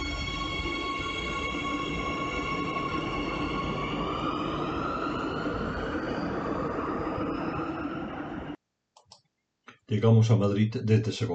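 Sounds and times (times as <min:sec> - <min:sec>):
metro train ride rumbling in Madrid: 0:00.2 - 0:08.6
speech: 0:09.9 - 0:11.3.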